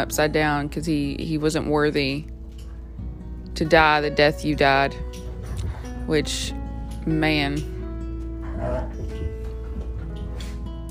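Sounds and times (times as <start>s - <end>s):
speech: 0.0s - 2.3s, 3.6s - 5.2s, 6.1s - 7.8s, 8.6s - 9.0s
dogs growling and scuffling indoors: 4.9s - 7.0s, 7.6s - 10.9s
dog whimpering: 8.4s - 9.2s.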